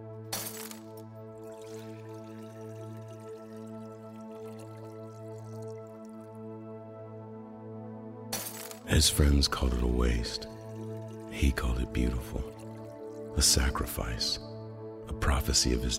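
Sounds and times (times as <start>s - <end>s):
glass perfume bottle smashing: 0.3s - 1.8s, 8.3s - 8.9s
perfume pouring and dripping: 0.4s - 6.4s, 8.4s - 13.9s
speech: 8.9s - 10.6s, 11.4s - 12.6s, 13.4s - 14.5s, 15.2s - 15.9s.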